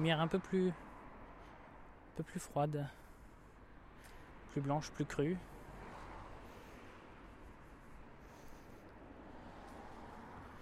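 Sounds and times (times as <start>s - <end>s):
speech: 0.0s - 0.9s, 2.2s - 3.0s, 4.5s - 5.5s
cars moving slowly with engine and tyre noise: 0.0s - 10.6s.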